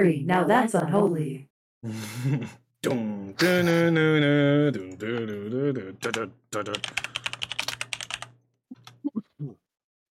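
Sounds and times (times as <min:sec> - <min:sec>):
speech: 0:00.0 - 0:07.2
computer keyboard typing: 0:06.0 - 0:09.0.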